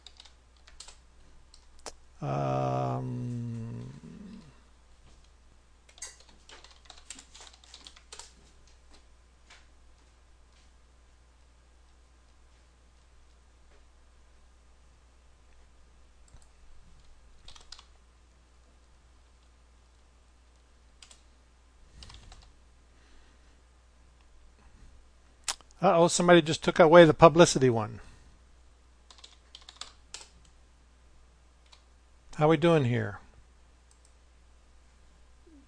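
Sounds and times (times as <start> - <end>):
people typing on computer keyboards: 0.0 - 1.7, 5.9 - 8.4, 17.4 - 17.9, 22.0 - 22.5, 29.1 - 30.4
speech: 2.2 - 3.2, 25.8 - 28.1, 32.4 - 33.2.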